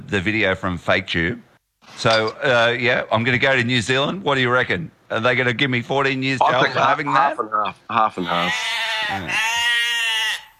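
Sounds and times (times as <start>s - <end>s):
speech: 0.1s - 9.6s
sheep bleating: 8.2s - 10.5s.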